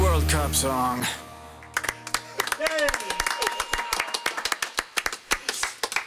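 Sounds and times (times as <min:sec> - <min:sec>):
speech: 0:00.3 - 0:01.2
audience clapping: 0:01.6 - 0:06.0
voices whooping and cheering: 0:02.5 - 0:04.6.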